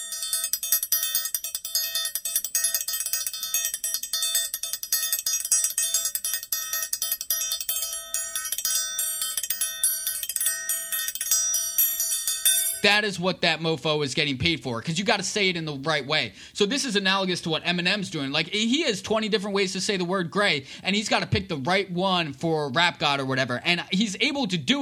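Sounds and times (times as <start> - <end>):
triangle being struck: 0.0 - 13.0
speech: 12.8 - 24.7.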